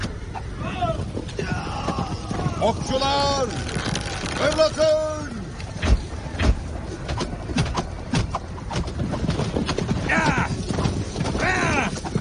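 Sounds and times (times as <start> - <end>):
galloping hooves of horses during a battle: 0.0 - 12.2
spooked horses neighing in panic during a battle: 0.3 - 4.7, 9.8 - 12.2
speech: 2.6 - 5.2.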